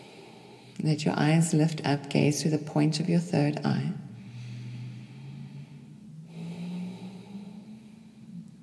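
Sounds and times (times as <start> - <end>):
long, deep breath in during a guided meditation breathing exercise: 0.0 - 0.8, 4.0 - 8.6
slow, steady exhale during a guided meditation breathing exercise: 0.0 - 0.8, 4.0 - 8.6
speech: 0.8 - 4.0.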